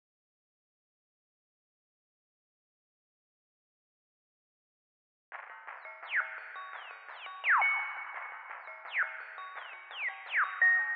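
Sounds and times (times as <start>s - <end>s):
nostalgic arpeggio melody loop in D-sharp minor: 5.4s - 10.9s.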